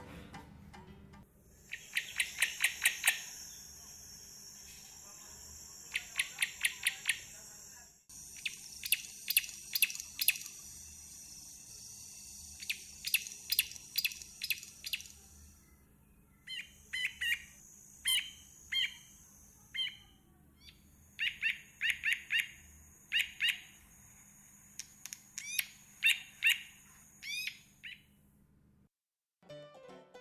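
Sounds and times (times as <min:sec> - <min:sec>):
steady high insect-like hiss: 0:01.4 - 0:15.7, 0:16.5 - 0:27.9
grey-backed camaroptera calling with sharp dry snapping notes: 0:01.7 - 0:03.4, 0:05.9 - 0:07.3, 0:08.4 - 0:10.6, 0:12.6 - 0:15.2, 0:20.6 - 0:23.8, 0:24.8 - 0:28.1.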